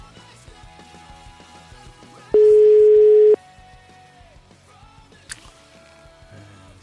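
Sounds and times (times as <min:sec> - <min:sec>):
outgoing telephone call ringing tone: 0:02.4 - 0:03.4.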